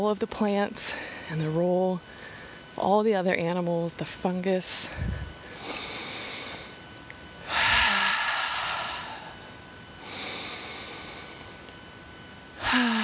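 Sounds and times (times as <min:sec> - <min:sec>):
speech: 0:00.0 - 0:05.2
slow deep breathing during a guided breathing exercise: 0:04.9 - 0:06.8, 0:07.4 - 0:11.6, 0:12.6 - 0:13.0.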